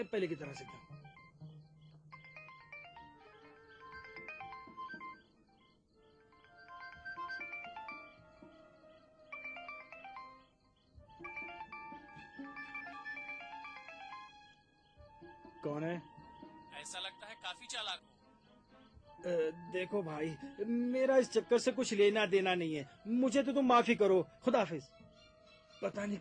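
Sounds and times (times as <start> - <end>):
speech: 0.0 - 1.0, 17.1 - 18.1, 19.2 - 25.0, 25.8 - 26.2
mobile phone ringtone playing a bright, melodic electronic tune: 2.2 - 5.4, 6.2 - 8.6, 9.3 - 14.5.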